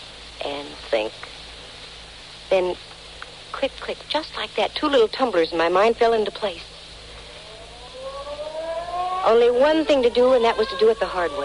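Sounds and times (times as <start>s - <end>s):
faint hum: 0.0s - 11.4s
speech: 0.9s - 1.4s, 2.5s - 3.0s, 3.6s - 6.7s, 9.2s - 11.4s
ferry building siren sounding the hour: 7.2s - 11.4s.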